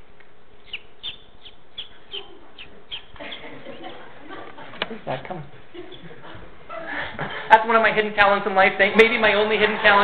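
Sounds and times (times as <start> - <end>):
hiss: 0.0 - 10.0
person imitating bird calls with whistles and peeps: 0.7 - 3.4
laughter: 3.1 - 7.5
speech: 5.0 - 6.4, 7.5 - 10.0.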